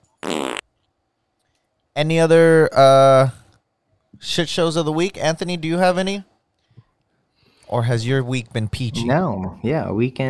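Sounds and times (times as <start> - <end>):
fart sound effect: 0.2 - 0.6
speech: 2.0 - 3.4, 4.2 - 6.3, 7.7 - 10.2.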